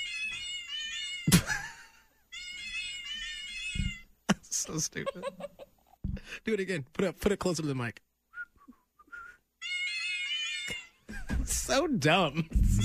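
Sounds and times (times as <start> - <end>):
tuned meow notes from a cat piano app: 0.0 - 1.3, 2.3 - 4.1, 9.6 - 11.0, 12.6 - 12.8
laughter: 4.3 - 6.0
speech: 4.7 - 5.7, 6.3 - 8.0, 11.8 - 12.8.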